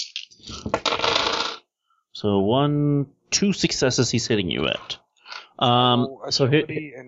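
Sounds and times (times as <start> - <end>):
handful of dice clattering onto a hard tabletop: 0.0 - 1.6
speech: 2.2 - 5.0, 5.6 - 7.0.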